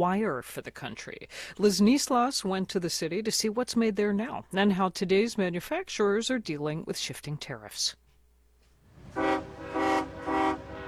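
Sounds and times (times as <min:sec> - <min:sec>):
speech: 0:00.0 - 0:08.0
freight locomotive engine rumbling: 0:08.8 - 0:10.8
freight locomotive horn blasts: 0:09.0 - 0:10.8.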